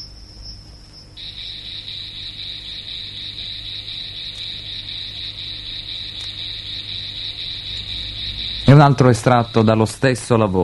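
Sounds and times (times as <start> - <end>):
crickets trilling on one high note: 0.0 - 10.6
speech: 8.8 - 10.6.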